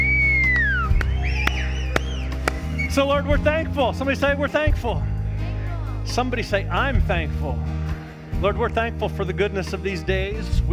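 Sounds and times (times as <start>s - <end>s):
crowd whistling: 0.0s - 3.5s
speech: 2.9s - 5.1s, 6.1s - 7.8s, 8.4s - 10.7s.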